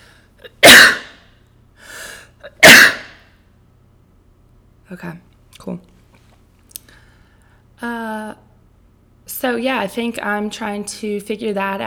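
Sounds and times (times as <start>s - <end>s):
person sneezing: 0.4s - 1.2s, 2.4s - 3.2s
speech: 4.9s - 5.9s, 7.8s - 8.4s, 9.4s - 11.8s.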